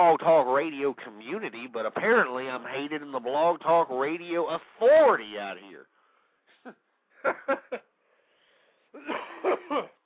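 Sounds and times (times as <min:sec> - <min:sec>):
speech: 0:00.0 - 0:05.9, 0:06.6 - 0:07.9, 0:08.9 - 0:10.0
laughter: 0:06.6 - 0:07.9
person coughing: 0:09.0 - 0:10.0.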